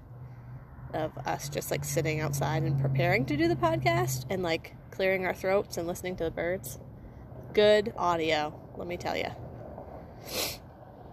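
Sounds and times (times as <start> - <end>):
low steady hum: 0.0 - 11.1
speech: 0.9 - 6.9, 7.6 - 9.4, 10.2 - 10.6
sniffle through a running nose after eating very spicy salsa: 10.2 - 10.6.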